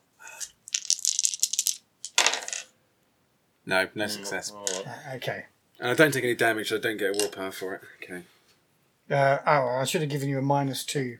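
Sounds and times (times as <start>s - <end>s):
dice clattering and tumbling across a hard tabletop: 0.4s - 2.7s
speech: 3.7s - 8.3s, 9.1s - 11.1s.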